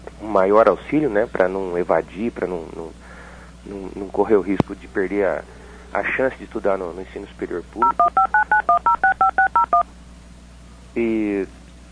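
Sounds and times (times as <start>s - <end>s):
speech: 0.2s - 8.9s, 11.0s - 11.6s
telephone keypad tones: 7.8s - 9.8s.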